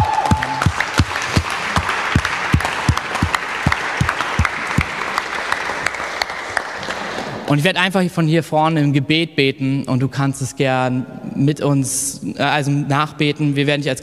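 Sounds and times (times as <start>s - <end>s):
large church audience clapping: 0.0s - 7.5s
speech: 7.5s - 14.0s.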